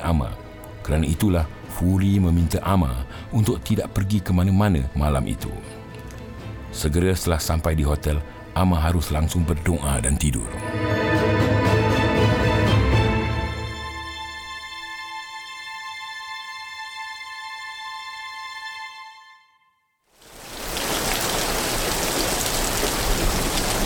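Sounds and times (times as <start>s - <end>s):
speech: 0.0s - 5.8s, 6.7s - 11.1s
sustained musical tone: 9.8s - 19.7s
heavy rain falling: 20.2s - 23.8s.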